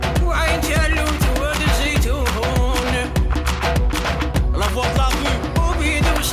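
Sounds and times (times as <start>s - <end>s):
song with a female singer and punchy percussion beat: 0.2s - 3.4s, 4.6s - 6.3s.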